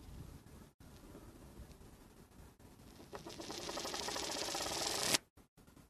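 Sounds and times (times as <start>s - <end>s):
500 yen coin clattering on a hard surface: 3.1s - 5.2s.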